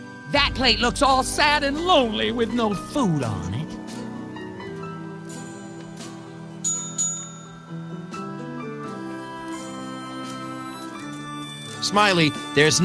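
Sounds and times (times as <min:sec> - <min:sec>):
steady tonal background: 0:00.3 - 0:05.9
speech: 0:00.4 - 0:03.6, 0:11.9 - 0:12.8
hand bell ringing: 0:06.6 - 0:08.0.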